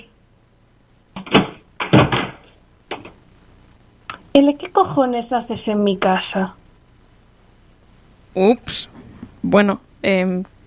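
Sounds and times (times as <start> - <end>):
loud resonant knocking on a door: 1.2 - 2.4
speech: 4.4 - 6.6, 8.4 - 10.5.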